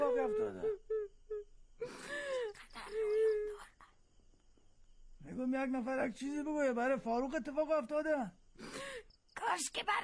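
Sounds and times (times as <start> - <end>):
woman crying with wailing sobs: 0.0 - 4.0
speech: 5.4 - 8.4, 9.5 - 10.0.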